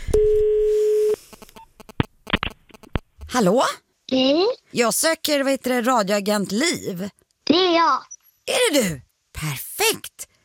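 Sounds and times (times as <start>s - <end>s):
steady telephone tone humming: 0.0s - 1.2s
telephone dialing clicks and beeps: 0.1s - 3.0s
speech: 3.4s - 10.3s.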